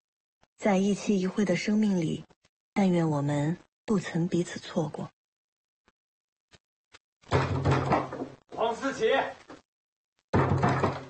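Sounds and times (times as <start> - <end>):
speech: 0.6 - 5.2, 8.7 - 9.4
knocking on a door: 7.3 - 8.4, 10.3 - 11.0.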